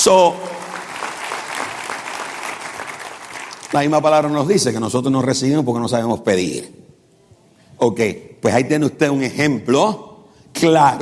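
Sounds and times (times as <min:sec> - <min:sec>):
speech: 0:00.0 - 0:00.5, 0:03.7 - 0:06.8, 0:07.8 - 0:11.0
church congregation applauding during a service: 0:00.0 - 0:04.5.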